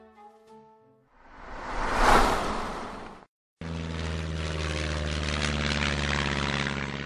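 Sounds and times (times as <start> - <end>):
old propeller airplane engines roaring: 1.7 - 7.0.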